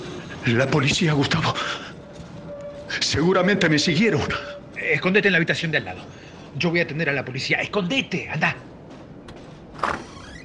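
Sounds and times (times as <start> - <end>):
speech: 0.4 - 1.9, 3.0 - 8.7
door creaking open with a rising squeal: 9.2 - 10.4.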